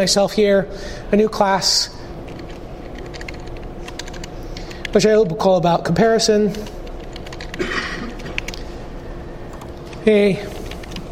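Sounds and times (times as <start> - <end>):
speech: 0.0 - 2.0, 4.9 - 6.8, 10.0 - 10.5
typing on a computer keyboard while writing code: 2.3 - 5.0, 6.5 - 7.6, 8.2 - 8.6, 9.5 - 11.0.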